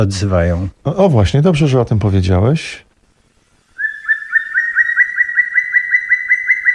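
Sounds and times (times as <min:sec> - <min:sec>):
speech: 0:00.0 - 0:02.8
black woodpecker spring call in the Beskid Niski mountains: 0:03.8 - 0:06.7.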